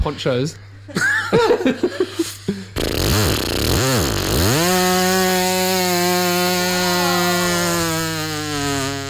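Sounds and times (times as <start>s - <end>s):
speech: 0.0s - 2.3s
laughter: 0.8s - 2.7s
person's voice mimicking a weed whacker: 2.8s - 9.0s.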